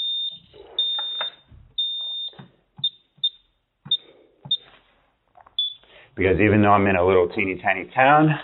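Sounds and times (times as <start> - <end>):
office security alarm keypad beeping as the alarm is turned off: 0.0 - 4.7, 5.6 - 5.8
speech: 6.2 - 8.4.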